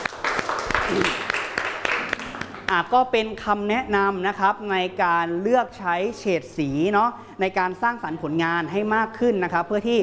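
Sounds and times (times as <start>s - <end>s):
class of students applauding a classmate: 0.0s - 2.7s
speech: 0.9s - 1.2s, 2.7s - 10.0s.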